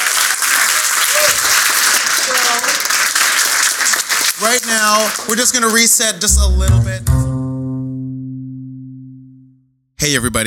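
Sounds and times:
audience applause: 0:00.0 - 0:06.3
speech: 0:04.4 - 0:07.2, 0:10.0 - 0:10.4.

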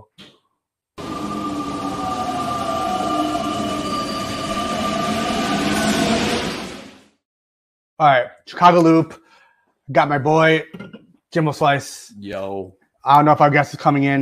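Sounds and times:
train rumbling with high metallic whine: 0:01.0 - 0:07.1
speech: 0:08.0 - 0:09.2, 0:09.9 - 0:14.1.

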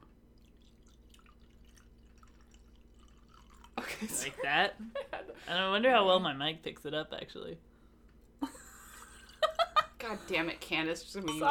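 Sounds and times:
faint steady hum: 0:00.0 - 0:11.4
wine trickling into a glass: 0:00.3 - 0:04.3
speech: 0:04.0 - 0:07.7, 0:10.1 - 0:11.4.

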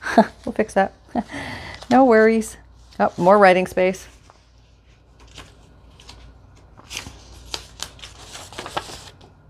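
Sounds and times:
speech: 0:00.2 - 0:04.2
pages of a vintage junk journal being flipped: 0:04.1 - 0:09.4.

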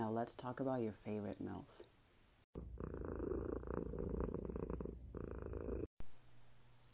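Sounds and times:
speech: 0:00.0 - 0:01.9, 0:02.6 - 0:03.0
cat purring: 0:02.6 - 0:05.9.

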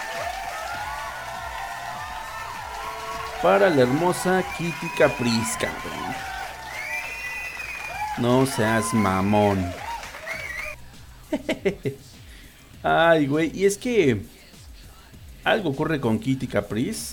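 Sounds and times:
steady clapping and crowd noise: 0:00.0 - 0:10.8
man speaking loudly: 0:03.4 - 0:06.2, 0:08.2 - 0:09.8, 0:12.8 - 0:14.3, 0:15.4 - 0:17.1
speech: 0:03.4 - 0:06.3, 0:08.2 - 0:09.8, 0:11.3 - 0:12.1, 0:12.8 - 0:14.4, 0:15.4 - 0:17.1
laughter: 0:10.4 - 0:12.1.

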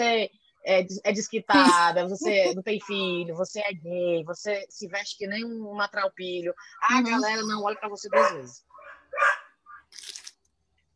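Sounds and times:
speech: 0:00.0 - 0:10.1
laughter: 0:01.5 - 0:02.6
dog barking: 0:07.8 - 0:09.9.

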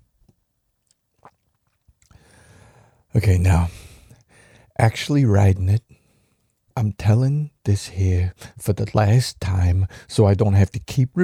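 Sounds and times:
mouth clicks and smacks from someone sipping coffee: 0:00.8 - 0:02.2
airy slurp from someone sipping coffee: 0:01.2 - 0:01.6
speech: 0:03.1 - 0:03.8, 0:04.8 - 0:06.0, 0:06.8 - 0:11.2.

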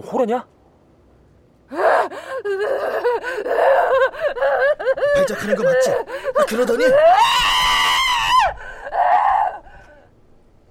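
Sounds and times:
speech: 0:00.0 - 0:00.6, 0:01.7 - 0:07.6
person screaming: 0:01.7 - 0:09.6
strained wail: 0:01.7 - 0:10.1.

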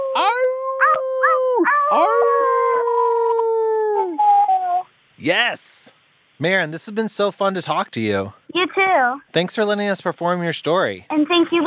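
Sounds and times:
two or more people imitating wolf howls together: 0:00.0 - 0:04.5
speech: 0:01.9 - 0:02.4, 0:05.2 - 0:11.6.

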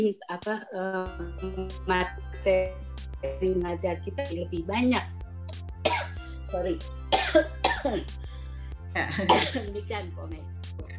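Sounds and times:
speech: 0:00.0 - 0:05.2, 0:06.5 - 0:08.3, 0:09.0 - 0:10.9
short dry coughs: 0:05.8 - 0:06.4, 0:07.1 - 0:08.1, 0:09.1 - 0:09.7.

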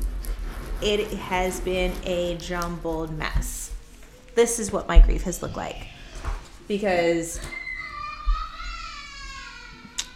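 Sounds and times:
speech: 0:00.8 - 0:03.7, 0:04.4 - 0:05.9, 0:06.7 - 0:07.6
young child screaming: 0:07.4 - 0:10.1.

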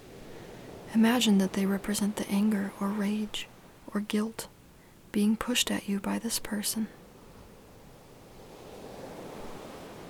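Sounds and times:
ocean surf roaring: 0:00.0 - 0:04.7, 0:07.0 - 0:10.0
speech: 0:00.9 - 0:04.5, 0:05.2 - 0:07.0.

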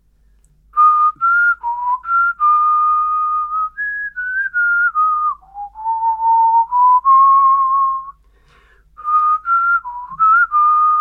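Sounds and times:
person whistling a TV series theme tune: 0:00.8 - 0:08.2, 0:09.0 - 0:11.0.

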